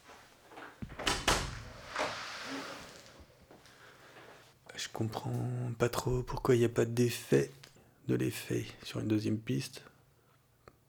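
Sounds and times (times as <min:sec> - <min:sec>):
door latch and handle clunking: 0:00.8 - 0:02.1
door swishing as it opens: 0:00.8 - 0:03.4
speech: 0:04.8 - 0:09.9.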